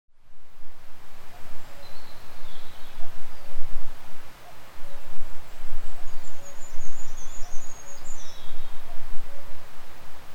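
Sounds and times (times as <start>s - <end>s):
cuckoo across the loch in the Highlands: 1.3s - 3.6s, 4.4s - 10.3s.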